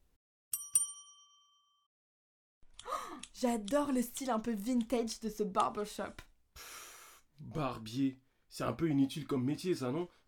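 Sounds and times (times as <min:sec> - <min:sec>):
bright metallic notification bell ding: 0:00.5 - 0:01.9
speech: 0:03.4 - 0:06.7, 0:07.4 - 0:10.2.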